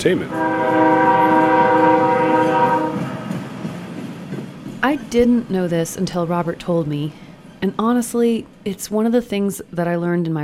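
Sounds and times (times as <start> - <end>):
speech: 0.0 - 1.0, 4.8 - 10.4
steam train horn blaring a sustained chord: 0.0 - 3.6
rolling clatter of steam train cars: 0.0 - 9.2
steam train rumbling past: 0.0 - 10.4.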